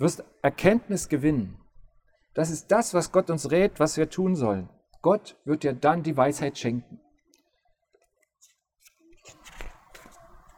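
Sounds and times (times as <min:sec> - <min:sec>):
speech: 0:00.0 - 0:01.6, 0:02.4 - 0:07.0
pages turned on a music stand: 0:08.4 - 0:10.5.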